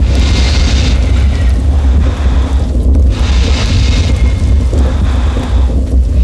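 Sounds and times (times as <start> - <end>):
massive forge: 0.0 - 6.2.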